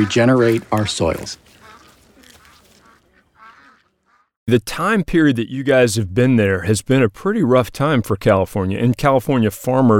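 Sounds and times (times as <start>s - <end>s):
speech: 0.0s - 1.6s, 4.5s - 9.9s
small flock of farm ducks quacking: 0.0s - 4.4s.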